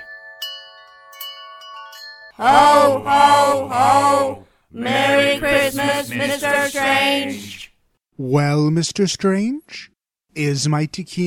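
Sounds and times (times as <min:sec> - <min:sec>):
golden metal handbell ringing: 0:00.0 - 0:02.4
speech: 0:02.4 - 0:07.6, 0:08.2 - 0:11.2.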